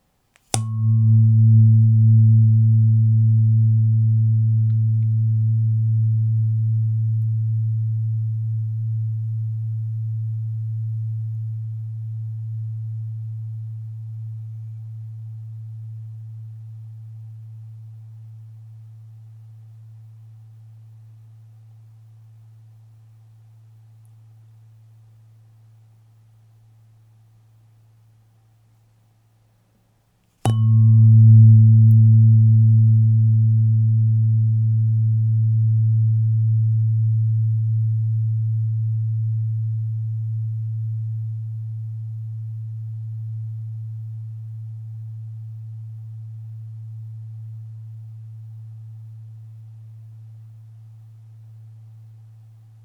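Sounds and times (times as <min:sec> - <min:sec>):
111Hz aluminium tuning fork ringing: 0:00.5 - 0:17.8, 0:30.5 - 0:47.9.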